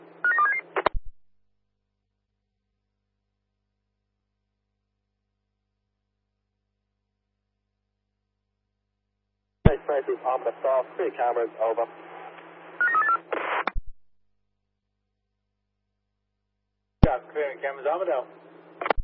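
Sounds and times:
telephone being dialed with touch-tone beeps: 0.3s - 0.9s, 12.8s - 13.2s
speech: 9.9s - 12.1s, 17.6s - 18.5s
sharp click: 18.8s - 19.0s.

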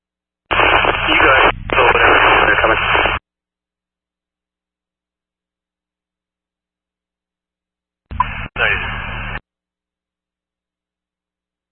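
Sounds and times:
crackly radio transmission static: 0.5s - 3.2s, 8.1s - 9.4s.

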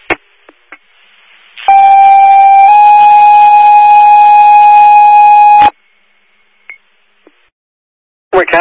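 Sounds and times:
iPhone crash detection electronic alarm tone: 1.7s - 5.7s
speech: 8.4s - 8.5s.

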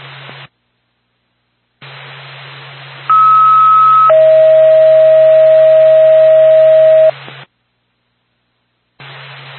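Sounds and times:
hissing radio static: 0.0s - 0.6s, 1.8s - 7.5s, 9.0s - 9.5s
two-stage electronic radio dispatch alert tone for ambulance: 3.1s - 7.1s.

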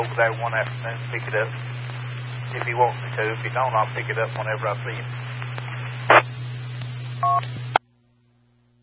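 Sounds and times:
speech: 0.0s - 1.8s, 2.5s - 5.4s
steady low electrical hum: 0.0s - 8.8s
electronic phone keypad beep while texting: 7.2s - 7.4s.

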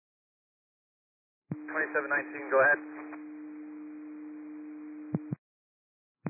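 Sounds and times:
radio dispatch alert tone: 1.6s - 3.2s
speech: 1.6s - 3.2s.

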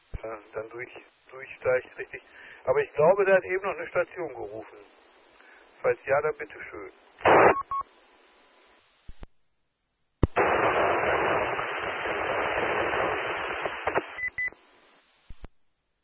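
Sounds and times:
radio transmission static hiss: 0.0s - 9.2s, 10.2s - 15.5s
speech: 0.2s - 5.0s, 5.8s - 7.0s
radio clicks: 13.6s - 14.2s.

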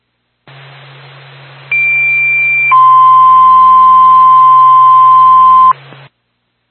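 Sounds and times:
hissing radio channel: 0.5s - 6.1s
fire dispatch alert tones over a radio channel: 1.7s - 5.8s.

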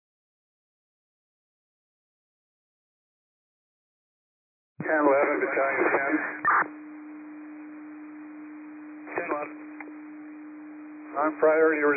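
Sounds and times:
dispatch radio voice transmission: 4.8s - 6.7s, 9.1s - 9.8s, 11.0s - 11.9s
speech: 4.8s - 6.9s, 11.2s - 11.9s
dispatch radio cancellation tone: 4.8s - 11.9s.

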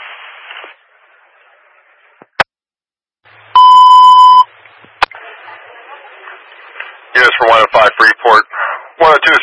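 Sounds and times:
building alarm beeping: 3.6s - 4.5s
hissy radio static: 5.0s - 9.4s
speech: 7.4s - 9.4s.

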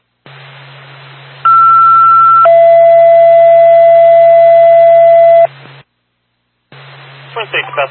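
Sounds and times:
hiss of radio static: 0.2s - 1.5s, 6.7s - 7.8s
fire dispatch alert tones over a radio channel: 1.5s - 5.5s
speech: 7.5s - 7.8s.

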